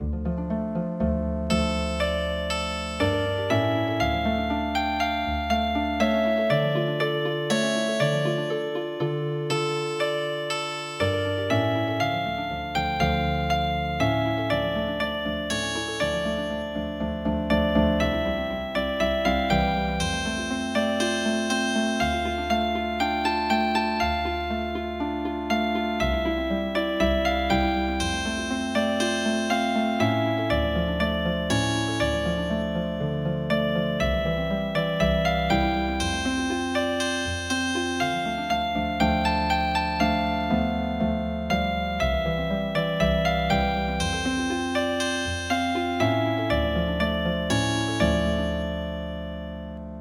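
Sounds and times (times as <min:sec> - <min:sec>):
MIDI harp playing a traditional march: 0:00.0 - 0:49.9.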